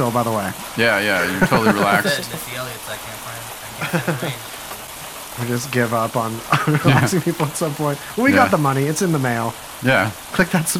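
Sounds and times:
speech: 0:00.0 - 0:04.6, 0:05.4 - 0:10.7
rain falling: 0:00.0 - 0:10.7
laughter: 0:00.9 - 0:02.6, 0:03.6 - 0:04.6, 0:06.4 - 0:08.5.

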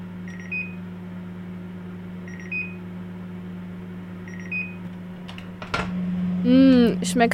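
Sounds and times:
900 watt microwave oven humming while cooking a mug cake: 0:00.0 - 0:07.3
microwave oven short electronic beep pairs: 0:00.3 - 0:00.8, 0:02.3 - 0:02.8, 0:04.3 - 0:04.8
clunk of microwave oven door opening: 0:05.2 - 0:06.0
speech: 0:06.4 - 0:07.3.

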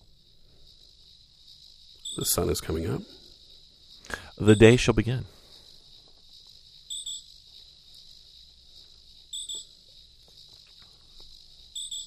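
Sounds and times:
crickets chirping: 0:00.0 - 0:12.0
speech: 0:02.2 - 0:03.2, 0:04.4 - 0:05.4.

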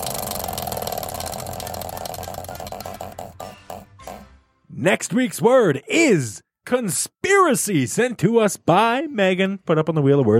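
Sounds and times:
spinning prize wheel clicking as it slows: 0:00.0 - 0:03.9
speech: 0:04.8 - 0:10.3.

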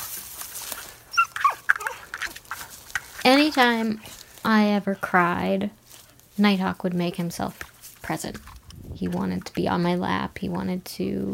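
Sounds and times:
dog whimpering: 0:01.1 - 0:02.1
speech: 0:03.5 - 0:05.8, 0:06.4 - 0:11.3.

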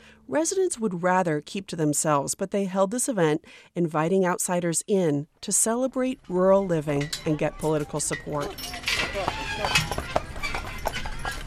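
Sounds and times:
speech: 0:00.3 - 0:10.0
indistinct voices: 0:05.6 - 0:11.4
horse hooves clip-clopping pulling a buggy: 0:06.2 - 0:11.4
outdoor crowd murmur: 0:07.6 - 0:11.4.

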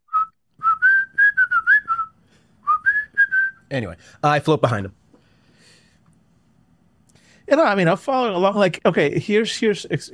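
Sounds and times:
person whistling a short melodic tune: 0:00.1 - 0:03.6
speech: 0:03.7 - 0:05.0, 0:07.5 - 0:10.1.

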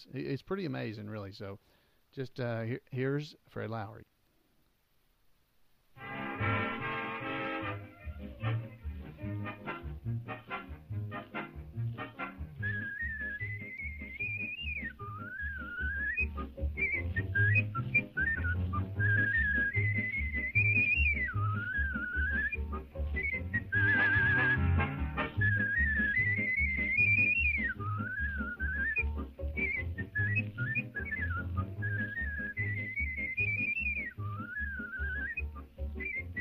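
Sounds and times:
speech: 0:00.0 - 0:04.1
steady instrumental accompaniment with a rhythmic bass: 0:06.0 - 0:34.6
man whistling a lively wavering melody: 0:12.5 - 0:36.4.

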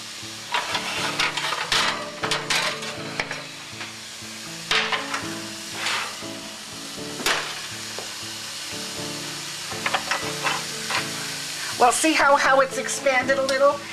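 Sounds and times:
kasha grains sizzling in a pan: 0:00.0 - 0:13.9
speech: 0:00.2 - 0:00.5, 0:11.8 - 0:13.9
stirring strokes scraping a pan of kasha grains: 0:00.5 - 0:04.0, 0:05.6 - 0:06.4, 0:09.8 - 0:11.8, 0:13.8 - 0:13.9.

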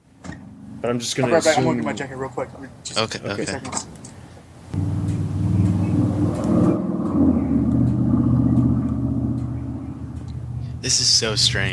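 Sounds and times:
speech: 0:00.8 - 0:04.0, 0:10.9 - 0:11.7
road traffic rumble with vehicles passing: 0:04.8 - 0:11.7.

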